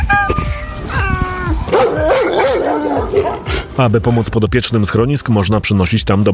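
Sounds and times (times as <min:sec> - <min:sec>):
dogs whining and yipping at an animal shelter: 0:01.2 - 0:03.7
dogs barking and yelping at an animal shelter in Białystok Poland: 0:01.6 - 0:03.8
speech: 0:03.8 - 0:06.3.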